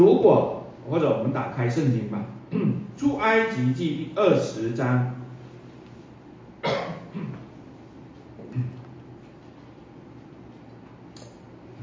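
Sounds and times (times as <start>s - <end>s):
speech: 0.0s - 5.2s
person coughing while reading scripture during a sermon: 2.5s - 2.9s, 6.6s - 7.5s.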